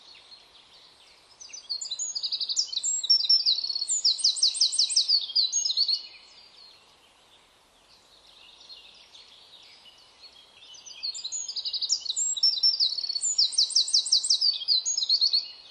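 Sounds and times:
Eurasian wren Troglodytes troglodytes trilling song: 1.3s - 6.5s, 10.7s - 15.6s.

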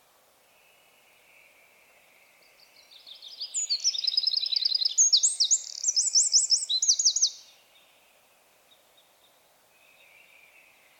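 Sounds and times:
Eurasian wren Troglodytes troglodytes singing trills: 2.7s - 7.5s.

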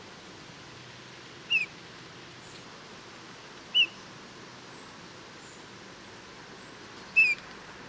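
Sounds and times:
faint background hiss: 0.0s - 7.8s
Pyrrhula pyrrhula Eurasian bullfinch calling: 1.5s - 1.7s, 3.7s - 4.0s, 7.2s - 7.4s.

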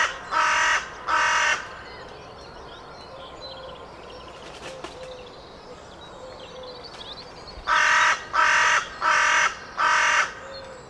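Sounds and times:
carrion crow Corvus corone cawing: 0.0s - 1.7s, 7.7s - 10.4s.

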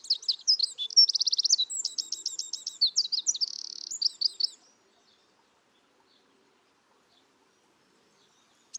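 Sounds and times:
Eurasian wren Troglodytes troglodytes singing: 0.0s - 5.2s, 8.1s - 8.7s.

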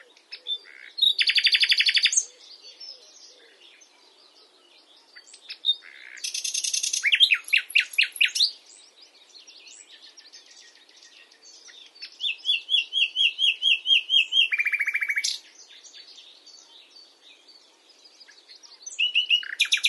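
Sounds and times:
common nightingale Luscinia megarhynchos song: 0.0s - 19.8s.

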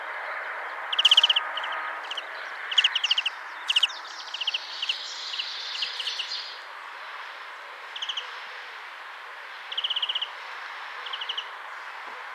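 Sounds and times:
light background noise: 0.0s - 12.3s
European greenfinch Chloris chloris giving trilled series, scratchy chirps and chatter: 0.9s - 6.6s.

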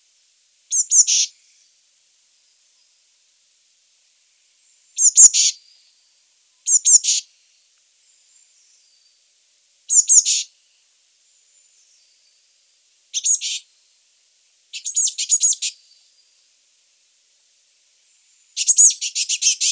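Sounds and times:
Eurasian blue tit Cyanistes caeruleus calls: 0.7s - 1.3s, 5.0s - 5.6s, 6.7s - 7.2s, 9.9s - 10.5s, 13.2s - 13.6s, 14.7s - 15.8s, 18.6s - 19.6s.

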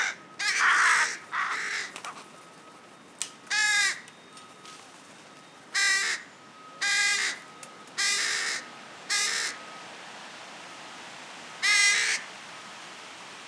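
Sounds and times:
Carrion crow Corvus corone giving hoarse grating caws: 0.0s - 2.1s, 3.5s - 4.1s, 5.7s - 9.6s, 11.6s - 12.3s.

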